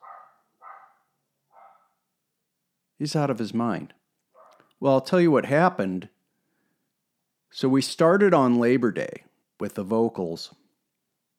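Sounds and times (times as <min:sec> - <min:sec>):
dog barks from a floor above through closed doors: 0:00.0 - 0:02.0, 0:04.4 - 0:04.7
speech: 0:03.0 - 0:04.0, 0:04.8 - 0:06.2, 0:07.5 - 0:10.6.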